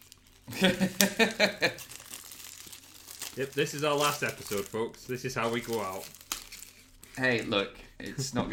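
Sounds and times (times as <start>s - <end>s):
plastic wrapping crinkling as a game package is torn open: 0.0s - 7.6s
speech: 0.5s - 1.7s, 3.4s - 6.2s, 7.2s - 8.5s
laughter: 0.5s - 1.8s.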